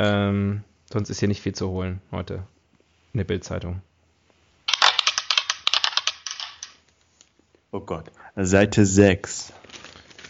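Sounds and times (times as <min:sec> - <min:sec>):
speech: 0:00.0 - 0:03.9, 0:07.7 - 0:09.6
die tumbling across a hard surface: 0:04.7 - 0:06.8.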